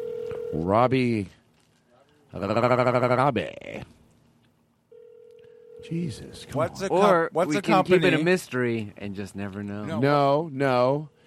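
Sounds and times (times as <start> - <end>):
phone ringback tone on speakerphone: 0.0 - 0.7, 4.9 - 6.2
speech: 0.5 - 1.4, 2.3 - 4.0, 5.8 - 11.2.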